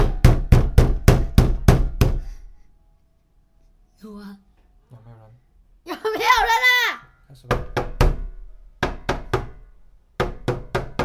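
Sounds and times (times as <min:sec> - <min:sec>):
loud heavy knocking on a door: 0:00.0 - 0:02.4, 0:07.4 - 0:11.0.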